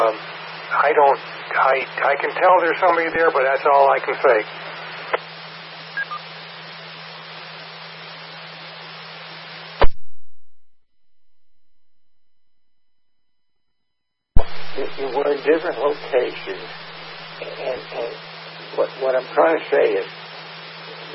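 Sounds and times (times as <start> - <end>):
harsh radio static hissing with sharp crackles: 0.0 - 10.1, 14.4 - 21.1
speech: 0.1 - 4.6, 15.0 - 20.2.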